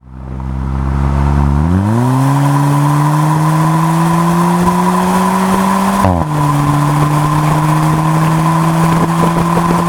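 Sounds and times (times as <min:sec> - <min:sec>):
Kia Sportage accelerating from 70 to 130: 0:00.0 - 0:09.8.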